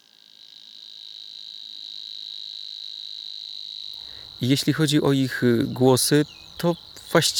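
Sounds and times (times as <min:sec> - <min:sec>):
Savi's warbler reeling song: 0:04.0 - 0:07.3
speech: 0:04.4 - 0:07.3.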